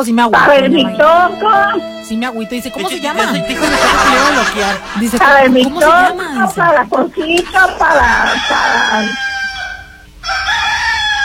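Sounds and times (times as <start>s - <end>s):
speech: 0.0s - 9.3s
laughter: 2.8s - 8.4s
rooster crowing: 8.0s - 11.2s.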